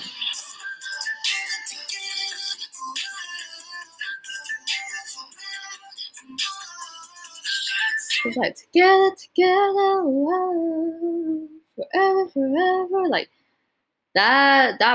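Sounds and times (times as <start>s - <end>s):
layered instrumental backing: 0.0s - 8.2s
whistled melody in a song: 0.0s - 8.3s
speech: 8.2s - 13.4s, 14.1s - 14.9s.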